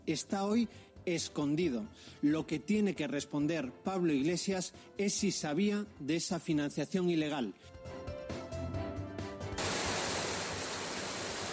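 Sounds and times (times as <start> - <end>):
speech: 0.0 - 8.0
rain falling: 9.6 - 11.5.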